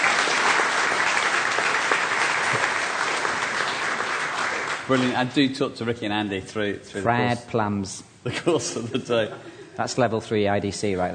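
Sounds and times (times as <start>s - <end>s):
audience applause: 0.0s - 5.4s
speech: 4.9s - 11.1s.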